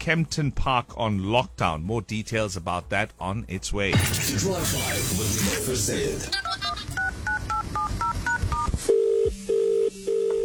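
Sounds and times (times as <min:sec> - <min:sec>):
speech: 0:00.0 - 0:06.5
touch-tone dialing beeps: 0:07.0 - 0:10.4.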